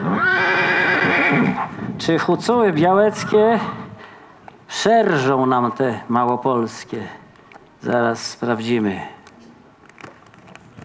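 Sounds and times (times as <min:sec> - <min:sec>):
horse neighing: 0:00.0 - 0:01.8
speech: 0:01.3 - 0:03.8, 0:04.7 - 0:07.2, 0:07.8 - 0:09.2.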